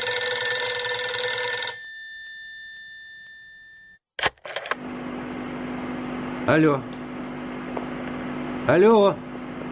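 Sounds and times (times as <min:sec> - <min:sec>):
telephone ringing with a bright electronic tone: 0:00.0 - 0:04.0
speech: 0:06.5 - 0:07.0, 0:08.7 - 0:09.2.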